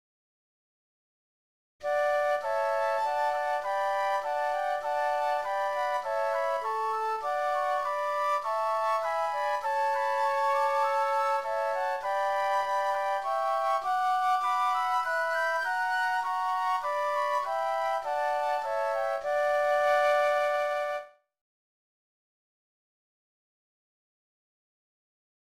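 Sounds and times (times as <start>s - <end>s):
flutes playing: 1.8s - 21.2s.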